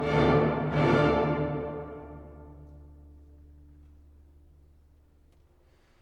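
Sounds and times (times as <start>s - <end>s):
dramatic orchestral music ending: 0.0s - 4.2s.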